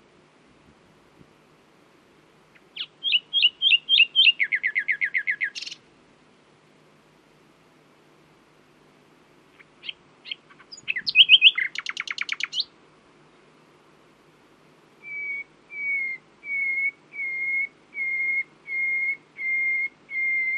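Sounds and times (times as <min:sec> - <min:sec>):
common nightingale Luscinia megarhynchos singing chirps rattles and whistles: 0:02.7 - 0:05.8, 0:09.6 - 0:12.7, 0:15.0 - 0:20.5.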